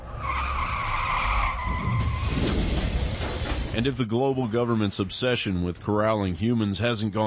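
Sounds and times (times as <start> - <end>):
car tires squealing while skidding: 0.0 - 3.7
car engine roaring at high speed: 0.0 - 5.6
speech: 3.8 - 7.2.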